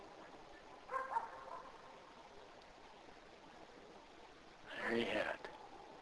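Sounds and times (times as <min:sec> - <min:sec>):
neighbor's dog barking at night: 0:00.9 - 0:01.8
speech: 0:04.9 - 0:05.4.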